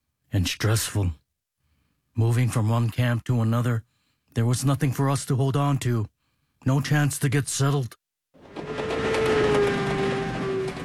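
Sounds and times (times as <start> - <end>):
speech: 0.3 - 1.2, 2.2 - 8.0
sustained tonal whine drifting in pitch: 8.4 - 10.8
train rumbling on rails: 8.4 - 10.8.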